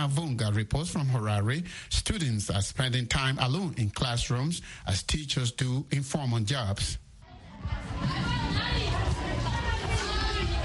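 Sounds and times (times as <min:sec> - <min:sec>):
speech: 0:00.0 - 0:07.0
children chattering and shouting while playing outside classrooms at a primary school: 0:07.2 - 0:10.6.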